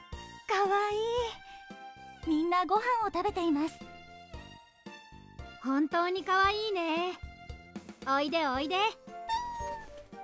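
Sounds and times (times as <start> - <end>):
speech: 0.6 - 1.4, 2.2 - 3.9, 5.6 - 7.2, 8.0 - 9.0
cat meowing with a drawn-out wavering cry: 9.3 - 10.1.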